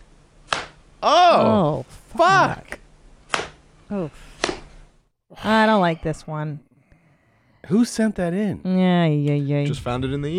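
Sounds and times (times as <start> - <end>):
open-hand slap to the face: 0.5 - 0.8, 3.3 - 3.6, 4.4 - 4.7
speech: 1.0 - 2.6, 3.9 - 4.3, 5.4 - 6.7, 7.7 - 10.3.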